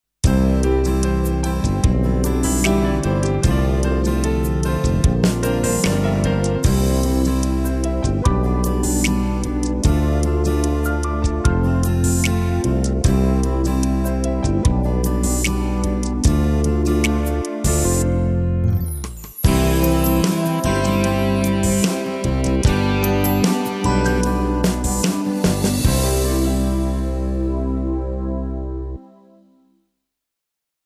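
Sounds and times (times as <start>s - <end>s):
pop ballad on keyboard styles: 0.2s - 29.0s.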